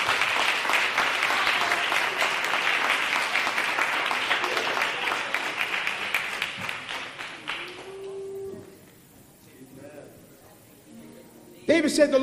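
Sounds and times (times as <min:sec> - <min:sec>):
crowd of people applauding: 0:00.0 - 0:08.8
speech: 0:11.8 - 0:12.2.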